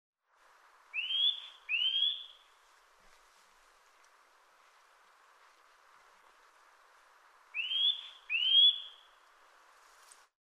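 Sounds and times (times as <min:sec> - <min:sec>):
faint background noise: 0:00.2 - 0:10.4
Eurasian nuthatch Sitta europaea upslurred whistled calls: 0:01.0 - 0:02.4, 0:07.6 - 0:09.2.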